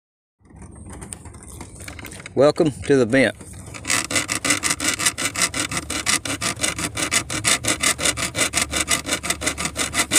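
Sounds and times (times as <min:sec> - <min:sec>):
speech: 0:02.4 - 0:03.5
metal saw blade cutting into a piece of aluminum: 0:03.8 - 0:10.1.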